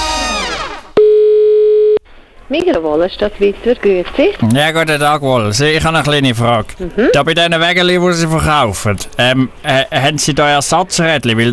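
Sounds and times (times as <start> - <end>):
telephone dial tone: 1.0 - 2.0
speech: 2.5 - 11.5.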